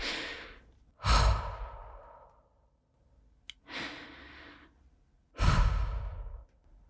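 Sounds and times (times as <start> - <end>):
nervous heavy shaky breathing: 0.0 - 2.6, 3.6 - 4.8, 5.4 - 6.6.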